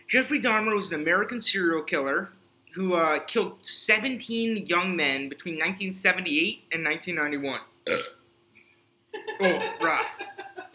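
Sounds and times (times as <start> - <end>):
speech: 0.1 - 8.2, 9.3 - 10.7
loud belching: 7.9 - 8.2
laughter: 9.2 - 10.7.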